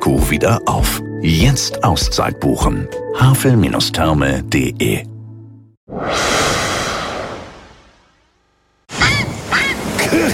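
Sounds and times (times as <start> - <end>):
speech: 0.1 - 5.1
rushing whoosh: 5.9 - 8.4
grey heron croaking calls: 9.0 - 9.8.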